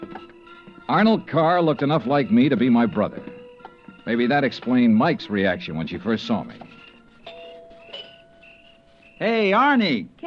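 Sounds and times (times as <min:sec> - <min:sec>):
speech: 0:00.9 - 0:03.3, 0:04.0 - 0:06.7, 0:09.2 - 0:10.2
doorbell chiming: 0:07.2 - 0:09.3.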